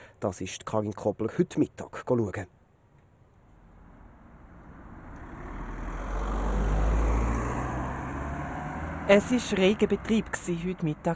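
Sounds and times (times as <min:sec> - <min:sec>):
speech: 0:00.2 - 0:02.6, 0:09.1 - 0:11.1
road noise: 0:03.0 - 0:11.1
car engine rumbling: 0:03.2 - 0:11.1.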